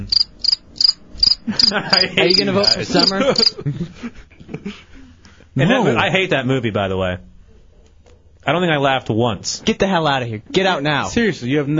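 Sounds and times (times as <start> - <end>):
crickets chirping: 0.0 - 3.6
laughter: 1.4 - 5.2
speech: 1.7 - 4.2, 5.6 - 7.3, 8.5 - 11.7.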